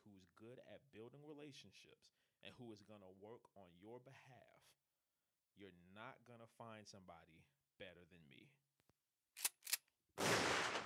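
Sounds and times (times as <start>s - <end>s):
speech: 0.1s - 4.8s, 5.6s - 8.6s
subdued gunshot sound effect pops: 10.2s - 10.8s.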